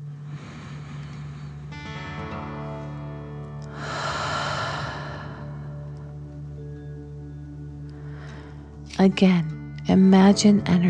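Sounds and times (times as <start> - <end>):
deep breath in and out during a guided breathing exercise: 0.0 - 2.0, 3.7 - 6.2, 7.8 - 8.9
soft sustained musical drone: 0.0 - 10.8
speech: 9.0 - 10.8.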